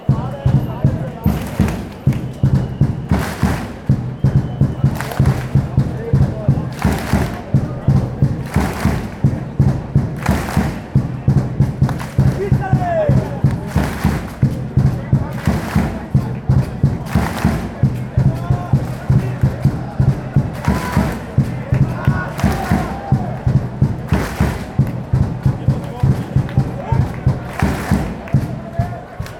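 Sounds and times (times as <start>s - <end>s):
fans chanting: 0.0s - 29.3s
fans clapping: 0.0s - 29.3s
fans drumming: 0.0s - 29.3s.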